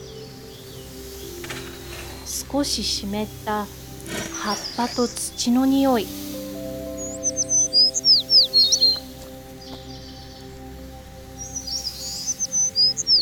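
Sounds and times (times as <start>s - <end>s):
small birds singing in chirping phrases: 0.0s - 13.1s
soft rustle: 1.2s - 6.0s
speech: 2.5s - 6.2s.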